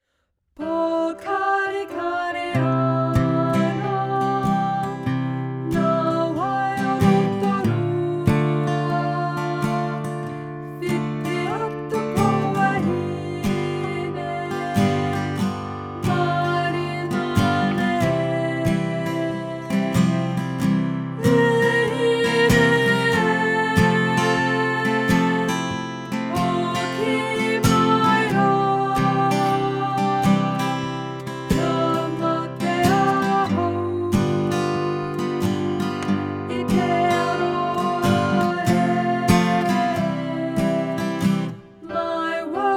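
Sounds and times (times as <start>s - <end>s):
soprano singing: 0.6s - 42.7s.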